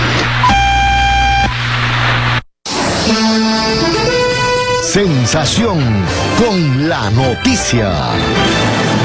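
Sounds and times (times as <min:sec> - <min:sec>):
radio hour time signal tone from a naval observatory: 0:00.0 - 0:04.7
speech: 0:05.0 - 0:08.9.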